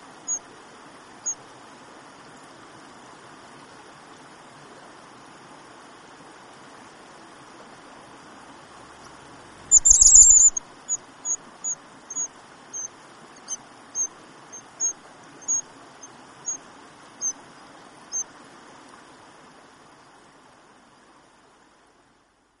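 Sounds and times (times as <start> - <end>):
background hiss: 0.0 - 22.5
white-throated dipper calling zit notes: 9.7 - 15.6.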